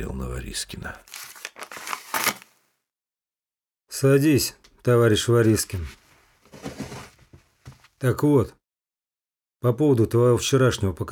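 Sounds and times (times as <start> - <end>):
speech: 0.0 - 1.3, 4.0 - 6.0, 8.0 - 8.6, 9.6 - 11.0
pages of a case file rustling as they are leafed through: 1.0 - 2.6, 5.4 - 8.0.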